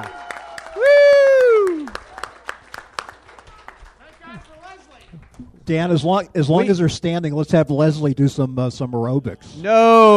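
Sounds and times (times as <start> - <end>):
loud voice letting out a long falling whoop of cheering: 0.0 - 2.0, 9.6 - 10.1
audience at a conference session applauding: 0.0 - 5.4
speech: 5.7 - 10.1.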